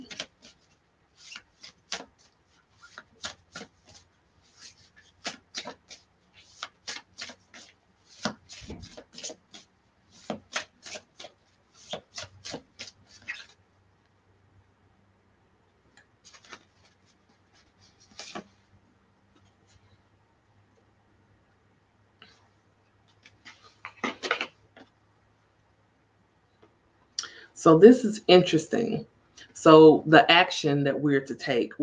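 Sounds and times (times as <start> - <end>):
deck of cards being shuffled by hand: 0.0 - 13.6, 16.2 - 18.6
speech: 27.6 - 31.8.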